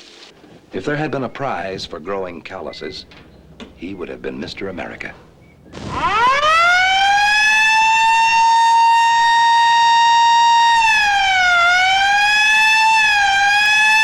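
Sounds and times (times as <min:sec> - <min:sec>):
speech: 0:00.7 - 0:05.3
ambulance roof siren wailing: 0:05.7 - 0:14.0.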